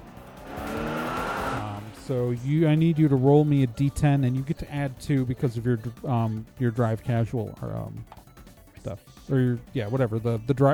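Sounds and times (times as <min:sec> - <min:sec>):
steady car engine tone: 0:00.0 - 0:06.0
car tires squealing on a sharp turn during a chase: 0:00.4 - 0:02.0
speech: 0:02.1 - 0:08.2, 0:08.8 - 0:10.7.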